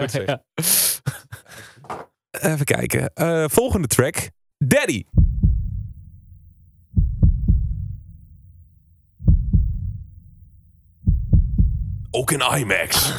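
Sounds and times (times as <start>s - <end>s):
speech: 0.0s - 1.2s, 1.9s - 5.2s, 12.1s - 13.1s
deep booming heartbeat sound effect in a music track: 5.2s - 8.6s, 9.2s - 12.2s.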